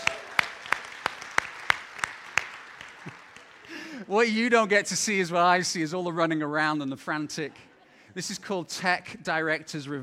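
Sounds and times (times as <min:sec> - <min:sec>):
audience applause: 0:00.0 - 0:04.2
speech: 0:04.1 - 0:10.0.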